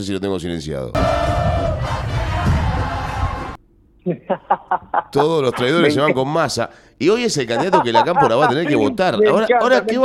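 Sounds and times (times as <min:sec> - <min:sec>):
speech: 0:00.0 - 0:01.9, 0:04.0 - 0:10.0
large crowd chanting a political chant in unison: 0:01.0 - 0:03.6
rhythmic shouted bursts: 0:01.0 - 0:03.6
laughter: 0:04.1 - 0:06.2, 0:07.3 - 0:10.0.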